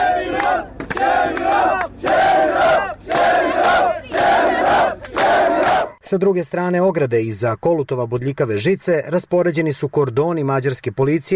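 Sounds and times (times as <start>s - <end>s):
crowd chanting a protest slogan at a barbed-wire border fence: 0.0s - 6.0s
speech: 6.1s - 11.3s.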